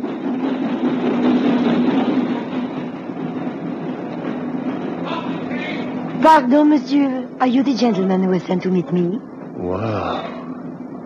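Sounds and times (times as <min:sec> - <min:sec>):
boat train pulling into a station rumbling: 0:00.0 - 0:11.0
speech: 0:06.2 - 0:10.3.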